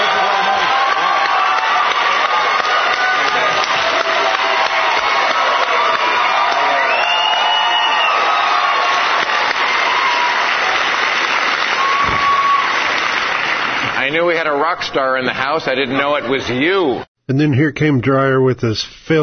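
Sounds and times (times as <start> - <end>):
crowd cheering and whooping: 0.0 - 13.9
large crowd applauding: 0.0 - 16.7
speech: 14.7 - 19.2.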